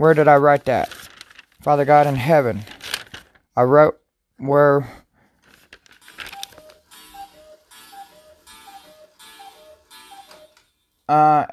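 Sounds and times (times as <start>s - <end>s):
speech: 0.0s - 1.0s, 1.6s - 2.7s, 3.6s - 5.0s, 11.1s - 11.5s
cuckoo clock two-note cuckoo call with bellows whoosh striking the hour: 6.0s - 11.2s.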